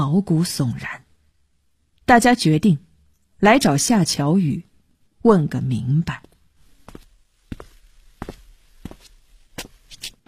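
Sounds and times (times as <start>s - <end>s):
speech: 0.1s - 1.0s, 2.1s - 2.8s, 3.4s - 6.3s
footsteps approaching a door: 6.7s - 10.2s.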